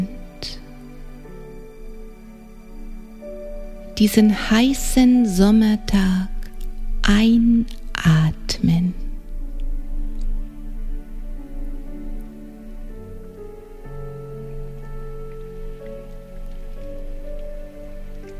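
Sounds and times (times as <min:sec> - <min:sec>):
light warm summer rain pattering: 0:00.0 - 0:18.3
low sustained tonal hum: 0:00.0 - 0:18.3
speech: 0:04.0 - 0:06.3, 0:07.1 - 0:09.0.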